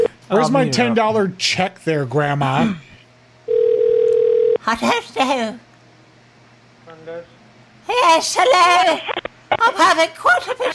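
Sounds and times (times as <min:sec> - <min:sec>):
speech: 0:00.3 - 0:02.9, 0:04.7 - 0:05.6, 0:07.1 - 0:07.3, 0:07.9 - 0:10.7
telephone ringing tone during call transfer: 0:03.5 - 0:04.6.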